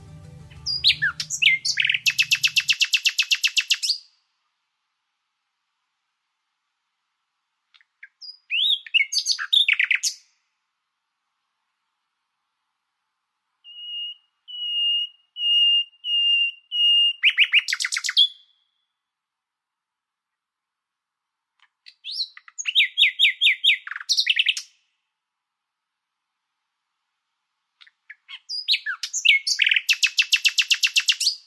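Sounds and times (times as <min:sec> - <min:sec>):
common nightingale singing: 0:00.0 - 0:04.2, 0:07.8 - 0:10.3, 0:13.6 - 0:18.6, 0:21.9 - 0:24.8, 0:27.8 - 0:31.4.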